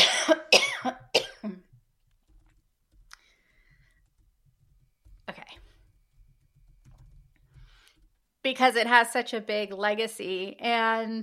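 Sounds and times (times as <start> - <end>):
person coughing: 0.0 - 1.6
speech: 8.5 - 11.2.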